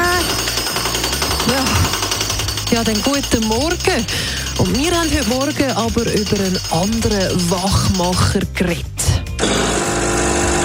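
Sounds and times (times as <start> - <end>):
rapid hammering at a construction site: 0.2 - 8.6
speech: 2.7 - 9.0
construction machine whining and roaring: 9.4 - 10.6.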